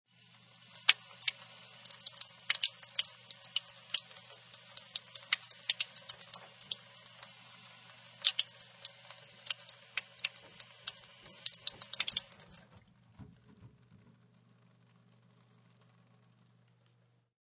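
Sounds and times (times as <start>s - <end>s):
laundry faucet running into large basin: 0.2s - 12.8s.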